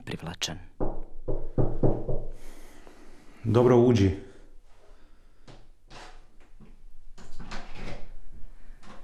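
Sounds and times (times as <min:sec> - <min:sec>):
speech: 0:00.1 - 0:00.8, 0:03.4 - 0:04.3
door creaking and scraping as it swings slowly open: 0:05.9 - 0:08.2.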